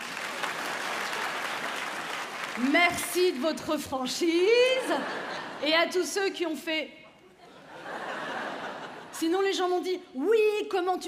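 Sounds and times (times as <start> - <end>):
audience at a French stand-up comedy show applauding: 0.0 - 3.4
speech: 2.6 - 7.0, 9.2 - 11.0
laughter: 4.6 - 6.0, 7.2 - 9.2.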